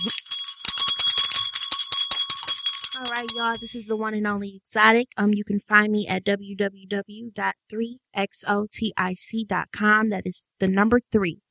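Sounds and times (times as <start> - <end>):
small metallic bell ringing rapidly: 0.0 - 4.0
speech: 3.0 - 11.4.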